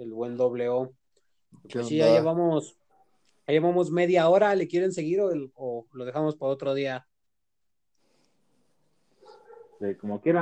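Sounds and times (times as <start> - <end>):
speech: 0.0 - 1.0, 1.6 - 2.8, 3.5 - 7.1, 9.8 - 10.3
several dogs barking: 9.2 - 9.8.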